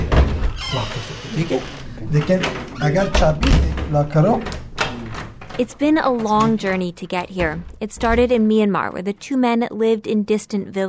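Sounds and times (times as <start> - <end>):
speech: 1.4 - 4.6, 5.6 - 10.8
front door of a third-floor apartment being unlocked: 2.4 - 8.6.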